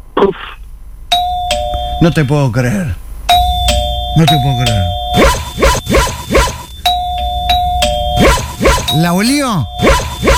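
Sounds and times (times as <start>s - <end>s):
doorbell ding-dong chime: 1.1s - 2.2s, 3.3s - 5.4s, 6.7s - 9.9s
speech: 2.0s - 3.0s, 4.2s - 5.4s, 8.9s - 10.3s.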